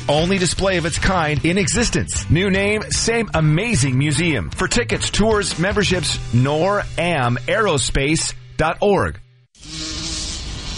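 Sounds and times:
speech: 0:00.1 - 0:09.9
bee buzzing around: 0:09.6 - 0:10.7.

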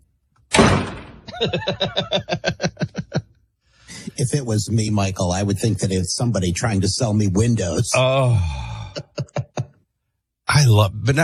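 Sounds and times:
heavy thump against a door: 0:00.5 - 0:01.3
laughter: 0:01.3 - 0:03.4, 0:08.7 - 0:09.8
speech: 0:01.4 - 0:02.8, 0:04.2 - 0:08.7, 0:10.6 - 0:11.2.

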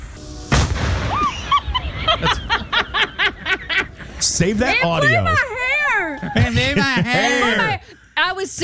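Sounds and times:
homemade cannon firing: 0:00.0 - 0:02.2
person laughing rhythmically and breathily: 0:01.2 - 0:04.2, 0:06.2 - 0:07.8
speech: 0:02.2 - 0:02.4, 0:04.4 - 0:05.6, 0:08.4 - 0:08.6.

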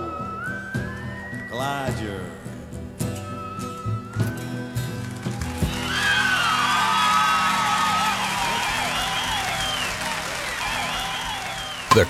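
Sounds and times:
shrill whistles: 0:00.0 - 0:12.0
large stadium crowd roaring and cheering: 0:04.9 - 0:12.0.

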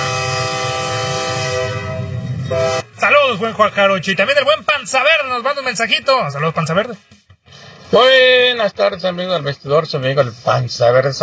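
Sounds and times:
train horn sounding a sustained chord: 0:00.0 - 0:03.0
speech: 0:03.3 - 0:07.2, 0:07.9 - 0:11.2.

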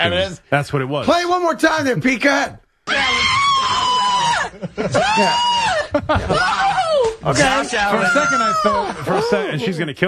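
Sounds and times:
speech: 0:00.0 - 0:03.4, 0:04.6 - 0:10.0
person screaming in a played-back clip: 0:02.9 - 0:07.1
laughter: 0:03.6 - 0:09.9.

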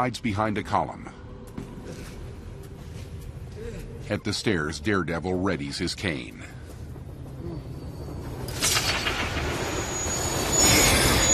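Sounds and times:
speech: 0:00.0 - 0:01.2, 0:04.1 - 0:06.6
train rushing past through a station platform: 0:07.1 - 0:11.3
thin metallic squeal of train wheels: 0:07.8 - 0:11.3.

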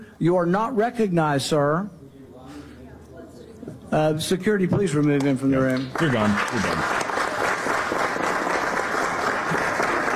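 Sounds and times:
speech: 0:00.2 - 0:02.0, 0:03.9 - 0:07.0
audience applause: 0:05.7 - 0:10.1.

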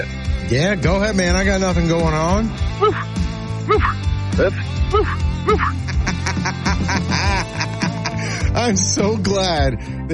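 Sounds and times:
steady music: 0:00.0 - 0:10.1
speech: 0:00.5 - 0:07.5, 0:08.5 - 0:10.1
man imitating yapping dog barks over a phone line: 0:02.8 - 0:05.9
laughter: 0:04.9 - 0:08.6.

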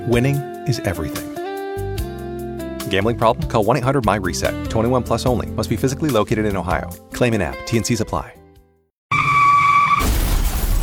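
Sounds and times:
speech: 0:00.0 - 0:01.4, 0:02.9 - 0:08.4
loud high tire screech of a car skidding: 0:09.1 - 0:10.4
noisy car crash with rumbling: 0:09.1 - 0:10.8.

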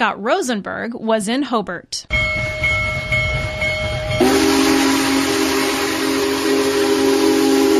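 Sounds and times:
speech: 0:00.0 - 0:02.2
Union Pacific Big Boy steam locomotive rumbling past: 0:02.1 - 0:07.7
loud deep steam whistle of a steam locomotive: 0:04.1 - 0:07.7.

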